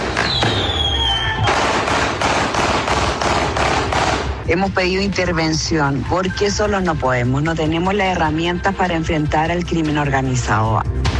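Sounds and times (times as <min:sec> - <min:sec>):
fireworks cracking and banging in the air: 0:00.0 - 0:04.4
gunshots fired into the air: 0:00.0 - 0:04.6
firework launching whistle: 0:00.2 - 0:01.6
speech: 0:04.5 - 0:11.1.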